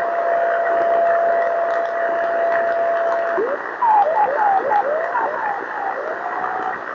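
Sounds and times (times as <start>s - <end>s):
driftnet beacon CW signal on 28006 kHz: 0.2s - 6.8s.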